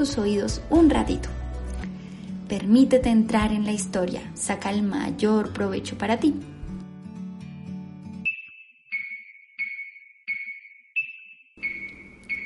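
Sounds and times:
speech: 0:00.0 - 0:01.4, 0:02.5 - 0:06.5
music: 0:00.0 - 0:09.0, 0:11.6 - 0:12.4
alarm clock ringing with high electronic beeps: 0:08.2 - 0:12.4.

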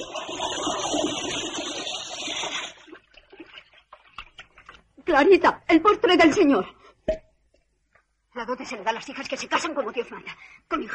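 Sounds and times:
bathtub water poured from a bucket into a toilet: 0:00.0 - 0:04.9
scattered drips and small trickles of water: 0:02.2 - 0:05.0
speech: 0:05.1 - 0:07.2, 0:08.4 - 0:10.9.

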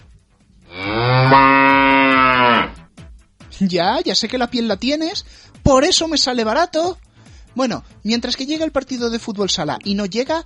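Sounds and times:
cow mooing: 0:00.6 - 0:02.9
speech: 0:03.6 - 0:07.0, 0:07.6 - 0:10.4.

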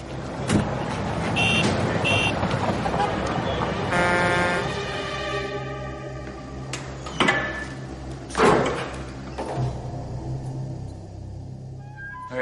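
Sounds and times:
busy street traffic rumbling with passing vehicles: 0:00.0 - 0:11.8
sustained car horn blaring: 0:01.3 - 0:02.5, 0:03.8 - 0:05.0.

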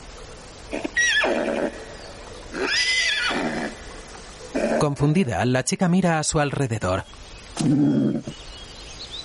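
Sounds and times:
white horse tied to a tree neighing: 0:00.7 - 0:01.8, 0:02.5 - 0:03.8, 0:07.6 - 0:08.3
speech: 0:04.8 - 0:08.5.

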